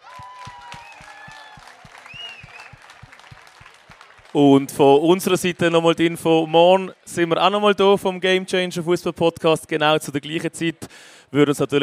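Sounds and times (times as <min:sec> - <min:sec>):
crowd whistling: 0:00.0 - 0:04.1
audience applauding at the end of a live talk: 0:00.0 - 0:08.4
crowd cheering: 0:00.0 - 0:08.5
speech: 0:04.4 - 0:11.8.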